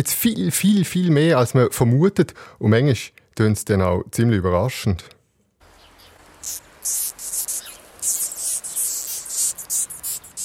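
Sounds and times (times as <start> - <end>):
speech: 0.0 - 5.2, 6.4 - 7.2
faint background hiss: 0.0 - 10.4
death's-head hawkmoth whistling in its mouth cavity: 6.4 - 10.4.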